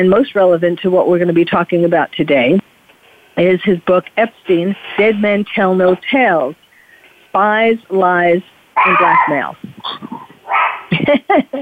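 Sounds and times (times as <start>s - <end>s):
speech: 0.0s - 2.7s, 3.4s - 6.6s, 7.3s - 10.1s, 10.9s - 11.6s
dog barking: 8.8s - 9.3s, 10.4s - 10.9s
brief murmur of voice: 8.8s - 10.4s.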